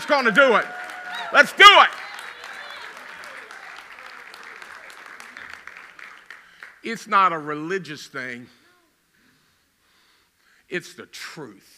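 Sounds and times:
people cheering: 0.0s - 6.4s
large group applause as a praise offering: 0.0s - 6.8s
speech: 0.1s - 2.0s, 6.8s - 8.6s, 10.7s - 11.7s.

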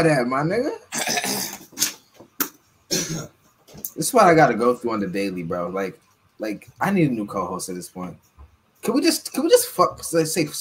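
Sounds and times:
speech: 0.0s - 1.1s, 3.1s - 10.6s
person coughing from something caught in the throat: 0.9s - 2.0s, 2.9s - 3.3s
throat clearing: 2.9s - 3.3s.

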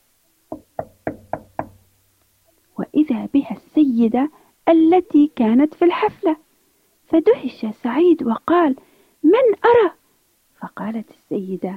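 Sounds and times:
firm knocks on a wooden door: 0.5s - 1.9s
speech: 3.1s - 6.4s, 7.1s - 10.0s, 10.7s - 11.7s.

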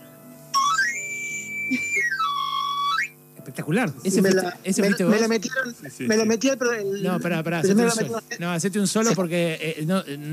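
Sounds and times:
faint steady hum: 0.0s - 10.3s
knife sharpener's flute whistle: 0.5s - 3.2s
speech: 3.4s - 10.3s.

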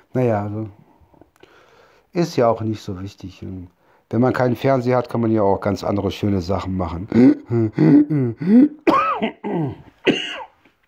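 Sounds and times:
speech: 0.1s - 0.8s, 2.1s - 10.4s
person clearing throat: 7.1s - 10.6s
person coughing: 7.1s - 10.6s.

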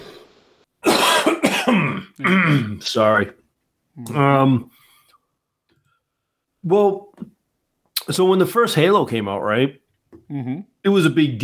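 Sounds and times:
person coughing harshly: 0.8s - 2.8s
speech: 2.2s - 3.4s, 4.0s - 4.8s, 6.6s - 7.4s, 8.1s - 11.4s.

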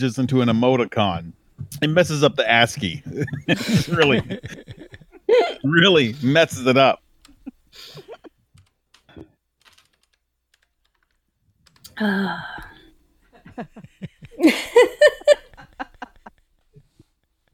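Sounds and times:
speech: 0.0s - 7.0s, 12.0s - 12.7s, 13.6s - 15.4s
laughter: 2.8s - 8.3s, 13.4s - 16.4s
typing on a computer keyboard: 8.6s - 11.9s.

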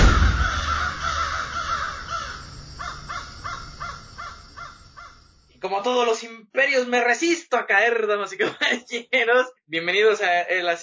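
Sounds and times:
crows cawing: 0.0s - 5.3s
speech: 5.7s - 10.8s.

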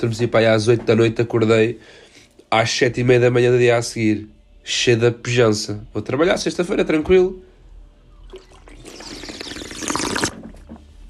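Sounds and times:
speech: 0.0s - 7.5s
person sipping water: 8.2s - 10.5s.

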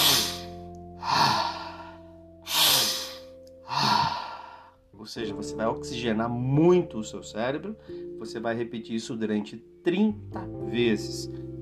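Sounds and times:
intense rhythmic breathing, in through the nose and out through the mouth: 0.0s - 4.9s
speech: 5.0s - 11.5s.

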